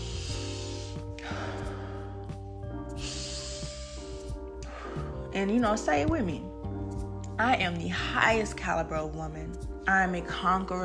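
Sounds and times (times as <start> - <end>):
deep breaths drawn slowly: 0.0 - 5.3
speech: 5.4 - 6.5, 7.4 - 10.8.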